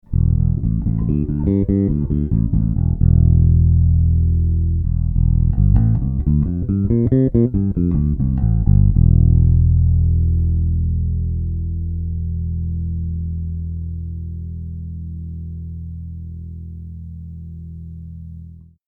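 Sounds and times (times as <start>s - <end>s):
bass guitar through instrument cable: 0.0s - 18.8s.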